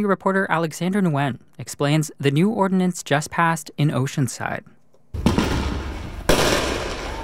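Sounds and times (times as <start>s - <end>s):
speech: 0.0s - 4.8s
illegal backyard fireworks banging in Oceanside: 5.2s - 7.2s.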